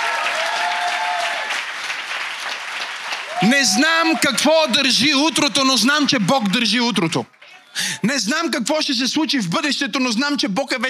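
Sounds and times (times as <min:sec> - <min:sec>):
large crowd applauding: 0:00.0 - 0:08.0
speech: 0:03.4 - 0:10.8.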